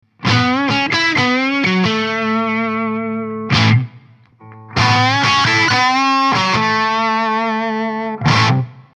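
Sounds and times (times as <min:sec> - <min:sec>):
red guitar on neck and bridge pickups through Rambler 25W: 0:00.1 - 0:08.9.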